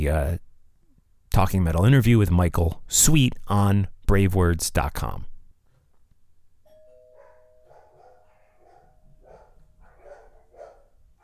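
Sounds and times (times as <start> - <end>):
speech: 0.0 - 0.5, 1.3 - 5.3
two-tone doorbell chime: 6.6 - 9.8
dog barking: 7.2 - 11.2.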